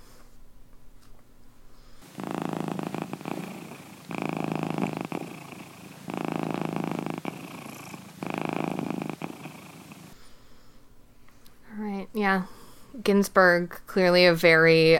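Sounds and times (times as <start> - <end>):
cat purring: 2.0 - 10.2
speech: 12.2 - 14.9.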